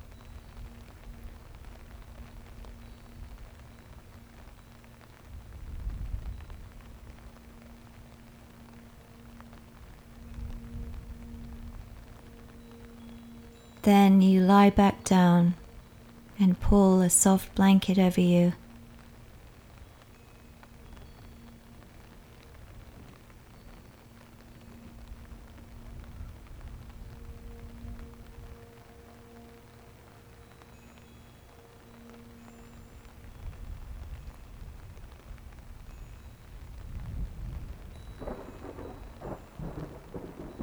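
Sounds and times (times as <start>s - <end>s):
steady rain during a storm: 0.0s - 40.6s
speech: 13.8s - 15.6s, 16.4s - 18.6s
low rolling thunder: 37.0s - 40.6s.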